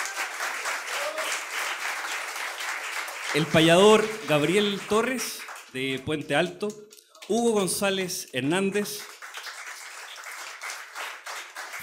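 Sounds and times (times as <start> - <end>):
audience applauding at a university folk music event: 0.0 - 6.1, 8.6 - 11.8
speech: 3.3 - 9.1.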